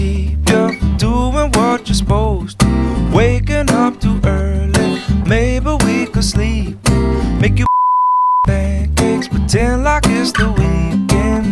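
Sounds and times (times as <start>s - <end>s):
song with vocals: 0.0s - 7.7s, 8.5s - 11.5s
steady high-pitched censor beep: 7.6s - 8.5s.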